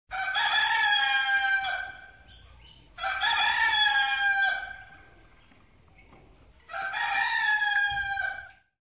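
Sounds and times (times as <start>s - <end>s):
rooster crowing: 0.1s - 2.0s, 3.0s - 4.9s, 6.7s - 8.6s.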